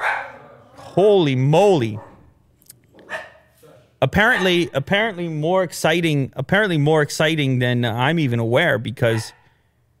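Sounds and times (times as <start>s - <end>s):
dog barking: 0.0s - 0.6s, 2.0s - 2.2s, 3.0s - 3.5s, 4.2s - 4.8s, 9.1s - 9.6s
speech: 1.0s - 2.1s, 4.0s - 9.4s.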